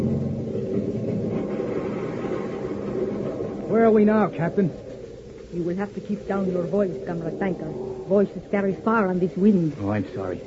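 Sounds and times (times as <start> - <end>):
motor sled engine rumbling on a frozen, windswept waste: 0.0 - 4.5
speech: 3.7 - 4.8, 5.5 - 10.4.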